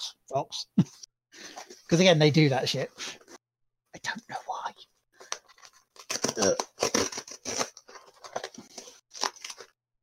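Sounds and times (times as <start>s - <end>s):
speech: 0.0s - 3.3s, 4.0s - 4.9s, 6.3s - 7.0s
cardboard box being torn open: 6.0s - 9.7s.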